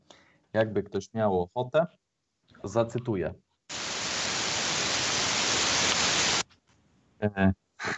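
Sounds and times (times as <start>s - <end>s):
speech: 0.5s - 2.0s, 2.6s - 3.4s, 7.2s - 7.9s
white noise: 3.7s - 6.4s.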